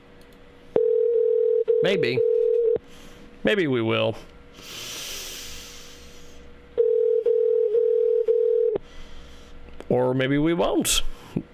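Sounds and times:
telephone dial tone: 0.8 - 2.8, 6.8 - 8.8
speech: 1.8 - 2.3, 3.4 - 4.8, 9.9 - 11.5.

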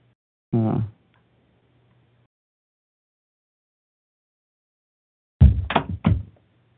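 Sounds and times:
dull thud on a door: 5.4 - 6.3.

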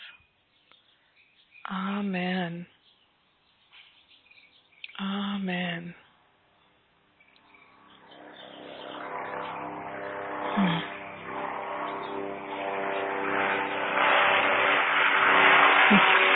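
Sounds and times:
speech: 1.7 - 2.8
traffic helicopters flying overhead: 7.5 - 16.3.

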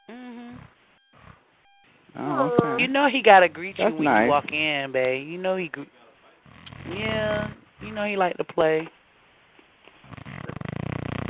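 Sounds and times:
speech: 2.2 - 6.0, 6.9 - 9.0
dog snorting and huffing with snore-like wheeze: 6.4 - 8.0, 10.0 - 11.2.

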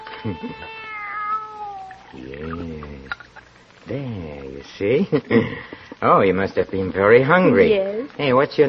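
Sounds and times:
young kitten meowing: 0.0 - 2.7
speech: 0.2 - 0.8, 2.1 - 8.6.

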